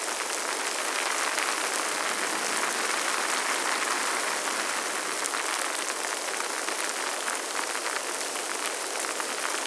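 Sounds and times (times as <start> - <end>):
rain in nature: 0.0 - 9.6.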